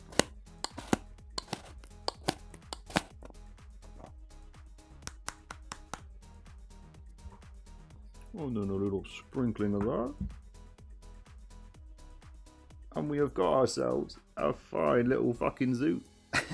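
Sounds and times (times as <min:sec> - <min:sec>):
poor-quality hand grinder crunching: 0:00.0 - 0:03.1
speech: 0:08.4 - 0:10.4, 0:13.1 - 0:16.5.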